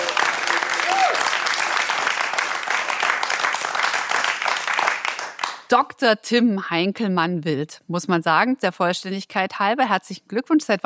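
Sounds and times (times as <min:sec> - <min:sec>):
live audience applause: 0:00.0 - 0:05.7
speech: 0:05.7 - 0:10.8.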